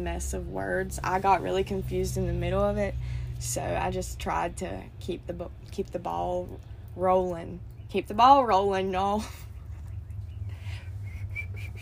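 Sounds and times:
speech: 0:00.0 - 0:09.5
low background rumble: 0:00.0 - 0:11.8
person whistling to imitate birdsong: 0:11.0 - 0:11.8.

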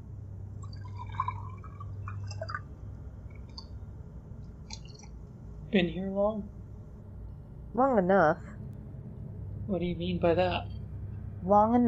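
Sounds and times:
steady low hum: 0:00.0 - 0:11.8
light drips and clinks: 0:00.6 - 0:02.7, 0:04.6 - 0:05.1
water trickling and gurgling into a glass: 0:00.6 - 0:02.7
speech: 0:05.7 - 0:06.6, 0:07.8 - 0:08.5, 0:09.7 - 0:10.7, 0:11.4 - 0:11.8.

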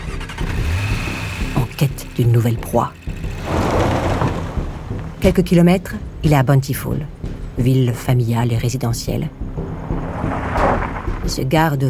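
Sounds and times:
car engine starting, rumbling and revving: 0:00.0 - 0:05.4, 0:09.4 - 0:11.5
speech: 0:01.8 - 0:03.0, 0:05.2 - 0:09.4, 0:11.3 - 0:11.8
sharp mechanical knocks: 0:02.7 - 0:05.1.

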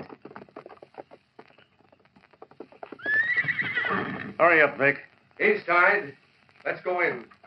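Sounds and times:
horse hooves clopping: 0:00.0 - 0:07.4
horse whinnying: 0:02.4 - 0:04.4
speech: 0:04.4 - 0:07.4.

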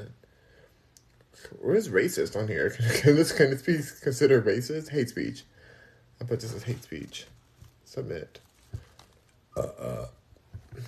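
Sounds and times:
speech: 0:01.4 - 0:05.5, 0:06.2 - 0:08.4, 0:09.6 - 0:10.2
loud rumbling burp: 0:09.6 - 0:10.2.

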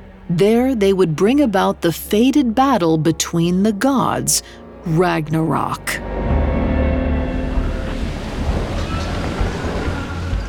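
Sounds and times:
speech: 0:00.3 - 0:06.2
gusty wind buffeting over the surf: 0:06.0 - 0:10.4
ocean waves churning: 0:06.0 - 0:10.4.

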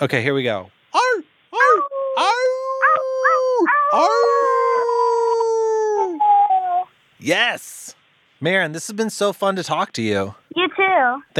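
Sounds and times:
speech: 0:00.0 - 0:00.8, 0:03.9 - 0:04.5, 0:07.2 - 0:11.3
several human voices howling in imitation of a wolf pack: 0:01.6 - 0:06.9.

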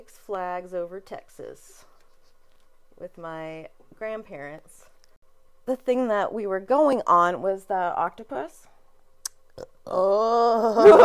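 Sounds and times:
speech: 0:00.0 - 0:01.9, 0:03.0 - 0:04.9, 0:05.6 - 0:08.7, 0:09.6 - 0:11.0
burp: 0:09.6 - 0:10.8.

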